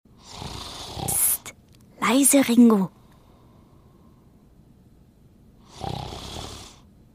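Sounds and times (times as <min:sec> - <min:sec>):
elderly woman snoring while asleep: 0:00.2 - 0:01.5, 0:05.6 - 0:06.9
speech: 0:02.1 - 0:03.0.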